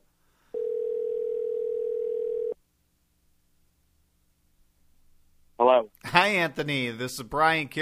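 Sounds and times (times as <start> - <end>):
steady telephone dial tone at constant pitch: 0.6 - 2.6
speech: 6.2 - 7.8.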